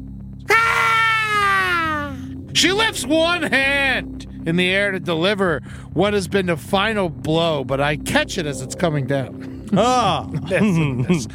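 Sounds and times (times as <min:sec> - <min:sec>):
human voice imitating a creature's blood-curdling screech: 0:00.5 - 0:02.2
speech: 0:02.6 - 0:11.3.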